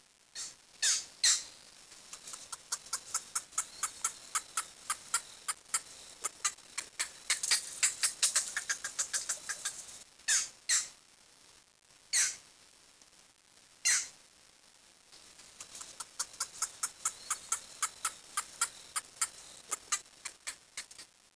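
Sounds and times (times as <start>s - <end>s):
bird giving longer harsh squawks: 0.4s - 1.5s, 2.2s - 10.9s, 12.2s - 12.4s, 13.9s - 14.1s, 15.6s - 21.0s
bird giving sharp high clicking chips: 2.0s - 10.0s, 15.4s - 21.1s.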